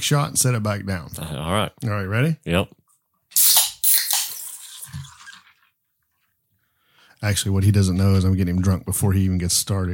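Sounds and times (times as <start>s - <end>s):
speech: 0.0s - 2.8s, 7.2s - 9.9s
beer cans cracking open: 3.4s - 5.4s.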